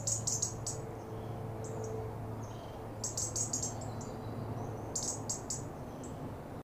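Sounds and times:
European robin Erithacus rubecula ticking calls: 0.0s - 0.8s, 1.6s - 6.2s
constant low mechanical hum: 0.0s - 6.6s.

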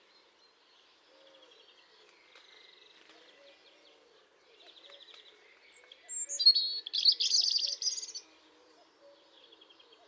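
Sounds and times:
European robin Erithacus rubecula song with whistle and trilled warble: 6.1s - 8.2s.

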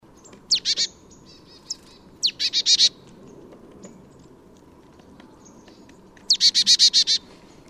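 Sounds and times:
Poecile palustris marsh tit calling: 0.2s - 3.0s, 5.5s - 7.3s.

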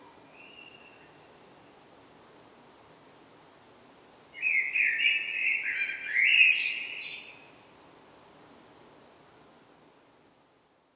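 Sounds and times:
common blackbird whistled song: 4.4s - 7.4s.

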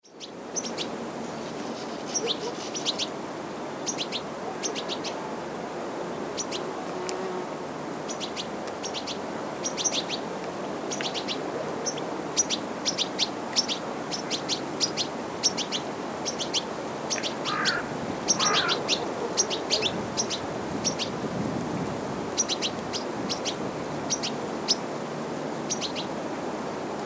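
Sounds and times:
steady background hiss: 0.1s - 27.0s
European Goldfinch Carduelis carduelis twittering calls: 1.7s - 3.1s, 3.8s - 5.2s, 10.9s - 21.1s, 22.4s - 24.8s, 25.7s - 26.1s.

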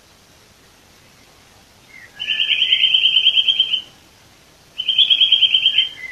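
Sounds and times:
Eurasian nuthatch Sitta europaea calling in rattling trills: 1.8s - 4.0s, 4.7s - 6.0s.

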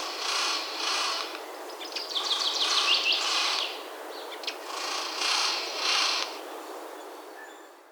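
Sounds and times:
Eurasian Jay Garrulus glandarius ticking rattling call: 0.0s - 1.4s, 2.2s - 3.8s, 4.4s - 6.4s.

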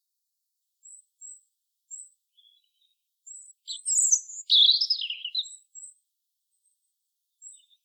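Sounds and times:
European robin song, Erithacus rubecula: 0.8s - 6.0s.

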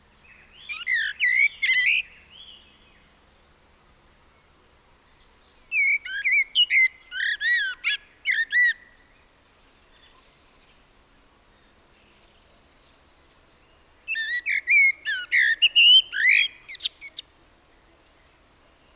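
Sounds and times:
common blackbird Turdus merula song: 0.2s - 3.6s, 5.7s - 10.7s, 11.6s - 17.3s.

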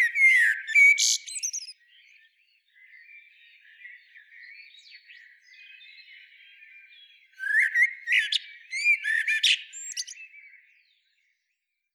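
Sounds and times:
soft twittering: 0.0s - 1.7s
common blackbird singing: 0.0s - 11.1s.

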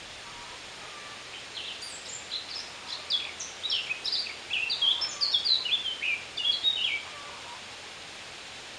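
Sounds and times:
Eurasian blackcap Sylvia atricapilla singing: 1.5s - 7.0s.

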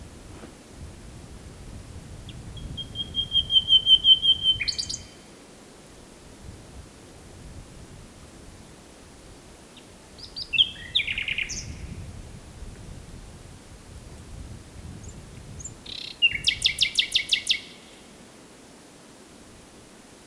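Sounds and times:
common nightingale Luscinia megarhynchos singing: 2.2s - 5.2s, 9.8s - 12.0s, 15.0s - 18.1s.

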